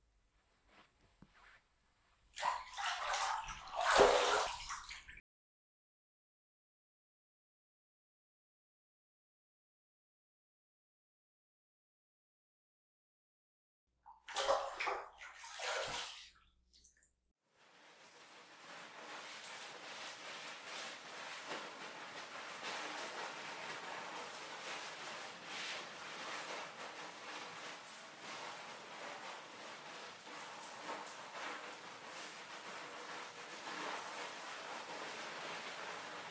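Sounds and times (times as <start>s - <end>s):
bath water splashing and sloshing while washing the body: 2.3s - 5.2s, 14.1s - 17.0s, 17.7s - 36.2s.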